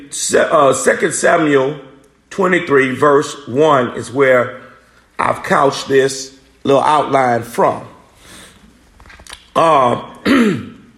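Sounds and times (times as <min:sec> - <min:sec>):
speech: 0:00.1 - 0:04.6, 0:05.2 - 0:07.9, 0:09.6 - 0:10.6
person clearing throat mid-speech: 0:10.1 - 0:10.9.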